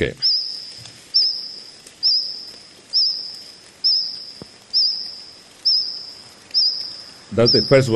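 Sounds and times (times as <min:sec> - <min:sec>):
speech: 0:00.0 - 0:00.2, 0:07.4 - 0:07.9
cricket singing close to the ground: 0:00.0 - 0:07.9.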